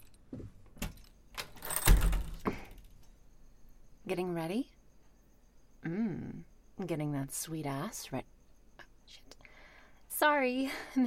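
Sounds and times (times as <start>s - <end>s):
door lock clicking open: 0.0s - 3.0s
keys jangling: 0.8s - 2.9s
speech: 4.1s - 4.7s, 6.8s - 8.3s, 10.2s - 11.0s.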